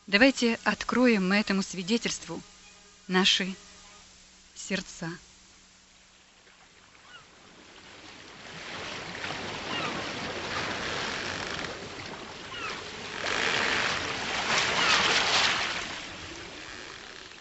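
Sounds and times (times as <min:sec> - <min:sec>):
speech: 0:00.1 - 0:02.5, 0:03.1 - 0:03.6, 0:04.6 - 0:05.3
rough Pacific Ocean water churning in a storm: 0:06.7 - 0:17.3
crashing swells pounding against a ship's hull: 0:08.4 - 0:17.3.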